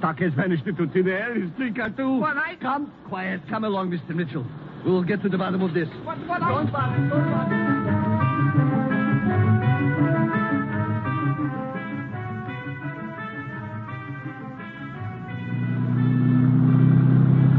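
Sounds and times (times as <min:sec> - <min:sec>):
speech: 0:00.0 - 0:08.7
car engine rumbling and pulling away: 0:06.0 - 0:17.5.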